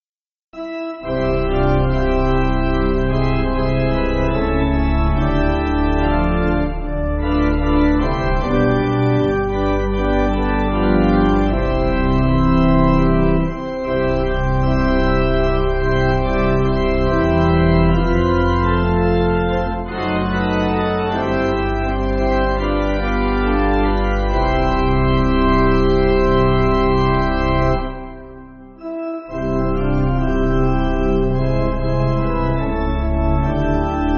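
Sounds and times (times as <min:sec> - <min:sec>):
pipe organ church backing music: 0:00.6 - 0:34.1.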